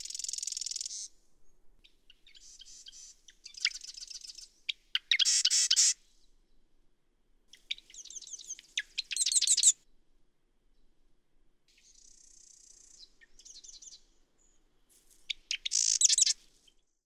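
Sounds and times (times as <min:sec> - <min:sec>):
marsh wren singing: 0:00.0 - 0:01.1, 0:02.2 - 0:06.0, 0:07.5 - 0:09.7, 0:11.8 - 0:14.6, 0:15.3 - 0:16.4.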